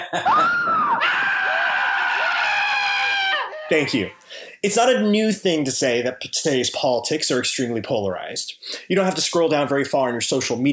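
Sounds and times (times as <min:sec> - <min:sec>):
speech: 0:00.1 - 0:00.7, 0:03.7 - 0:10.7
exaggerated cartoon-style screams: 0:00.3 - 0:03.8.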